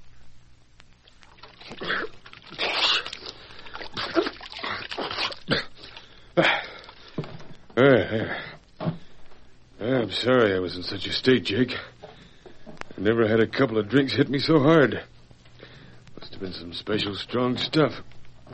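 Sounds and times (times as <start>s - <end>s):
cold water splashing and sloshing as a man douses his head: 1.0s - 7.2s
man sputtering and gasping: 1.6s - 7.3s
speech: 10.1s - 12.0s, 13.0s - 15.2s, 16.4s - 18.0s.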